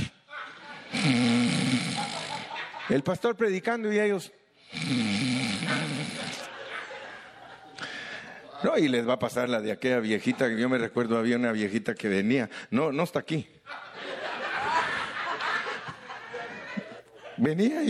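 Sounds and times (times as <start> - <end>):
man's voice imitating snoring: 0.8 - 2.5, 4.7 - 6.5
speech: 1.0 - 1.3, 2.9 - 5.8, 8.6 - 13.9, 17.4 - 17.8
laughter: 1.6 - 3.3, 5.7 - 8.6, 13.7 - 17.8.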